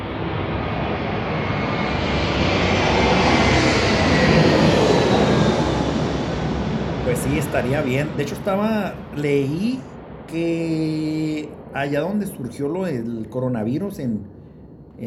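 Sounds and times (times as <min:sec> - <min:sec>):
propeller airplane engine droning overhead: 0:00.0 - 0:15.0
speech: 0:07.3 - 0:14.4.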